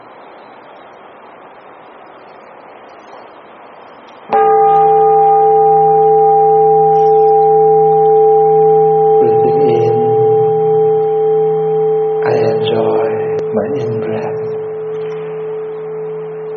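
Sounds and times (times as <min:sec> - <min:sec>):
meditation bell struck during a guided breathing meditation: 0:04.3 - 0:16.5.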